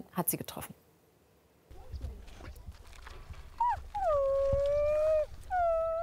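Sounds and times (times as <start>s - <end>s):
speech: 0.2s - 0.8s
low shuffling: 1.7s - 6.0s
wolves howling: 3.5s - 6.0s.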